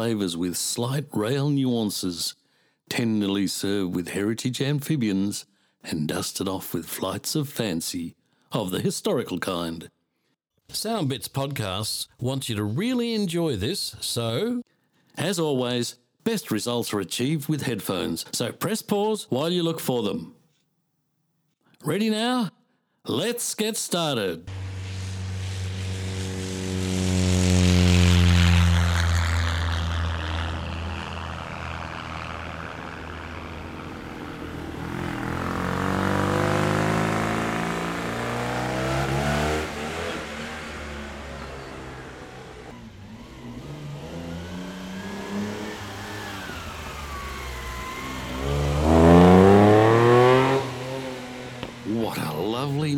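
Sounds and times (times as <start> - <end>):
speech: 0.0 - 10.0, 10.7 - 20.4, 21.8 - 24.6
broad whooshing noise: 24.5 - 33.9
propeller plane engine droning at a small airport: 24.5 - 51.8
rally cars accelerating hard on tarmac at an airport: 24.5 - 51.9.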